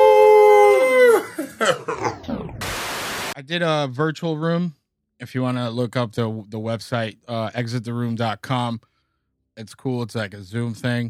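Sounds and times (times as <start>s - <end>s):
person howling like a werewolf: 0.0s - 2.6s
person yelping: 0.0s - 2.6s
speech: 3.5s - 8.9s, 9.6s - 11.0s.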